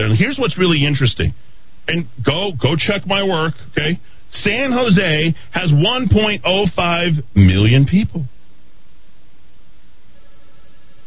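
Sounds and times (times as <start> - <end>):
speech: 0.0 - 8.4
steady room noise: 0.0 - 11.0
phone ringing: 10.1 - 11.0.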